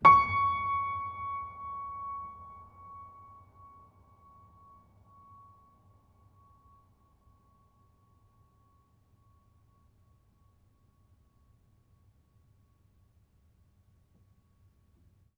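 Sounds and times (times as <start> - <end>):
piano note: 0.0 - 4.2.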